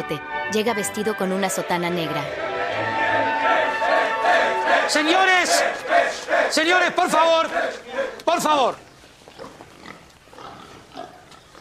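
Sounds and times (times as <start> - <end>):
speech: 0.0 - 3.6, 4.9 - 8.9
pig grunting and snorting: 9.3 - 11.5.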